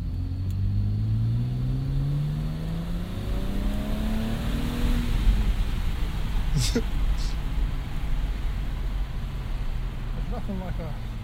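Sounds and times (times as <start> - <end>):
car engine revving through a downshift: 0.0 - 11.2
speech: 6.6 - 7.0, 10.5 - 11.1.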